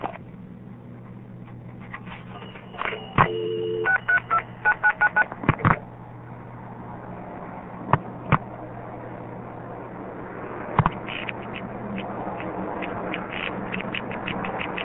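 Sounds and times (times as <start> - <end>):
low hum: 0.0 - 14.8
touch-tone beeps dialing a telephone number: 2.3 - 5.3.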